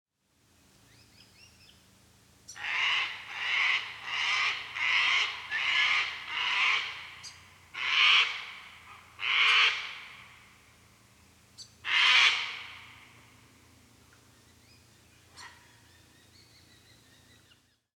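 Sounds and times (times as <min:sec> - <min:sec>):
sulphur-crested cockatoo Cacatua galerita galerita calling: 0:02.5 - 0:10.2, 0:11.8 - 0:13.1, 0:15.2 - 0:17.0.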